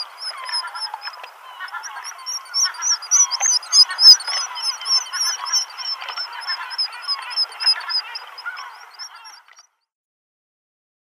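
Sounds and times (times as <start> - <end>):
black guillemot giving short high whistled notes: 0.0 - 9.4.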